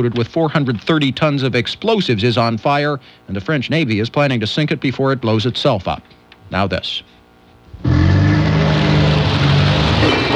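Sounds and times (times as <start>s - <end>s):
speech: 0.0s - 7.2s
car braking hard: 7.7s - 10.3s.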